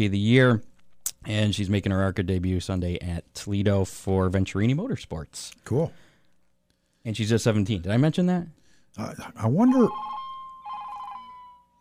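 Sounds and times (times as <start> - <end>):
speech: 0.0 - 6.0, 7.0 - 10.2
mobile phone ringtone with bright electronic tones: 9.6 - 11.7.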